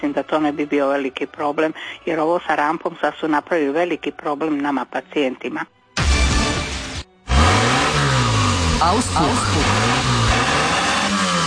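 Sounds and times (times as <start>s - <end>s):
speech: 0.0s - 5.8s, 8.8s - 9.9s
car engine revving through its exhaust at a hospital parking barrier ramp: 6.7s - 11.4s.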